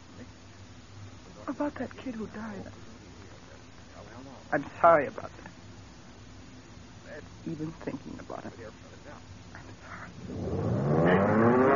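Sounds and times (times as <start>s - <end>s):
speech: 1.5s - 2.9s, 4.5s - 5.4s, 7.1s - 9.3s
aircraft engine restarting and revving: 10.1s - 11.7s.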